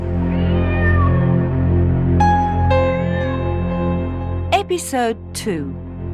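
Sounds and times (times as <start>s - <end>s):
steady droning musical background: 0.0s - 4.5s
cat meowing: 0.2s - 1.4s, 3.0s - 3.6s
speech: 4.7s - 6.1s.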